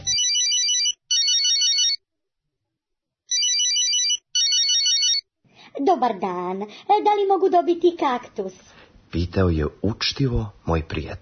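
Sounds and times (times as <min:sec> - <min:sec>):
telephone ringing as a call is placed: 0:00.0 - 0:02.0, 0:03.3 - 0:05.2
speech: 0:05.8 - 0:11.2.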